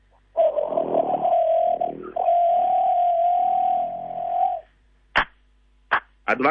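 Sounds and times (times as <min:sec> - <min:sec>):
person's voice imitating a forest bird's churring call: 0:00.4 - 0:04.7.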